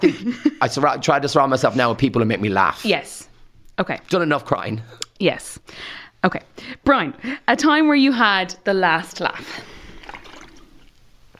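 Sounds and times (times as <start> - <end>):
speech: 0.0 - 9.8
water sloshing as someone takes a swig: 9.6 - 11.3.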